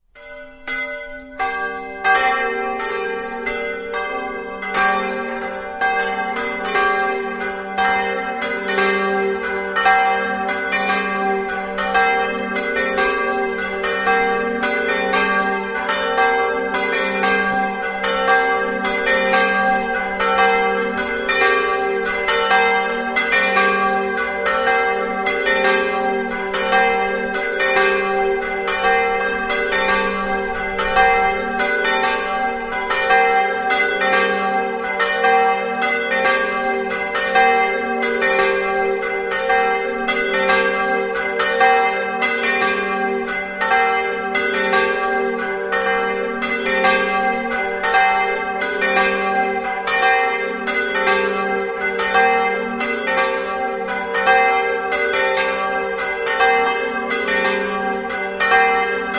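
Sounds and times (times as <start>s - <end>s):
bells ringing: 0.2s - 59.1s.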